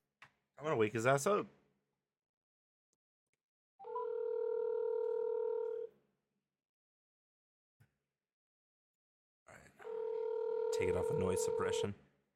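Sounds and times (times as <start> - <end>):
speech: 0.6 - 1.6, 10.8 - 12.1
telephone dial tone while placing a phone call: 3.8 - 5.9, 9.9 - 11.8.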